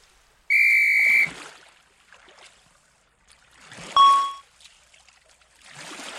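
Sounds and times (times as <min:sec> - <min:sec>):
water trickling and splashing: 0:00.0 - 0:06.1
shrill whistle blast: 0:00.5 - 0:01.3
bright ring: 0:04.0 - 0:04.4.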